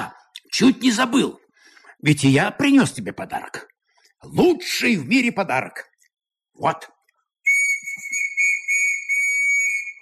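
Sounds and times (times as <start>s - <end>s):
speech: 0.6s - 1.4s, 2.0s - 5.9s, 6.6s - 7.0s
shrill trilling whistle blown: 7.4s - 9.9s.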